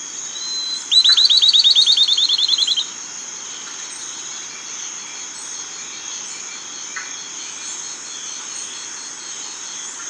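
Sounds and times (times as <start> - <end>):
bird trilling with short whistled notes: 0.4 - 2.9.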